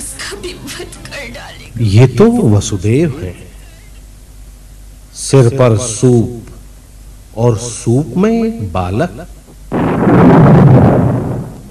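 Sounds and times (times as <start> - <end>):
speech: 0.3 - 3.5, 5.3 - 6.5, 7.4 - 11.0
thunder rumbling during heavy rain: 9.7 - 11.7.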